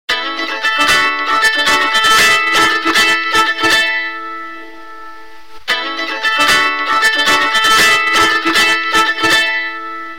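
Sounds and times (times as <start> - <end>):
music: 0.1 - 10.1.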